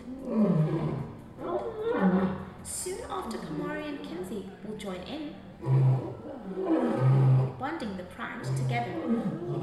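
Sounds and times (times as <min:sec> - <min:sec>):
male lion roaring: 0:00.0 - 0:02.6, 0:05.6 - 0:07.6, 0:08.4 - 0:09.6.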